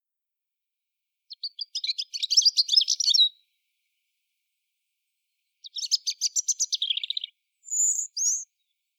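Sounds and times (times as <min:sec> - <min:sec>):
European robin (Erithacus rubecula) singing: 0:01.3 - 0:03.4, 0:05.6 - 0:08.9.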